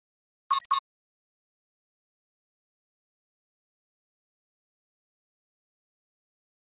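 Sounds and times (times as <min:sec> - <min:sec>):
flash beep: 0:00.5 - 0:00.8.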